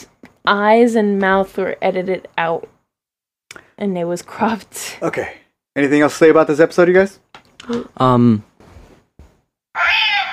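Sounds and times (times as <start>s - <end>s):
speech: 0.4s - 2.7s, 3.8s - 8.5s
cat meowing in a loft: 9.8s - 10.3s.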